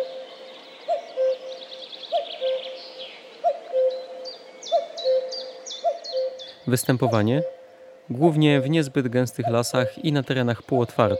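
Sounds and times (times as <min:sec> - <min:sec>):
common cuckoo calling: 0:00.0 - 0:11.1
small birds chirping and trilling: 0:00.0 - 0:11.1
speech: 0:06.7 - 0:11.1.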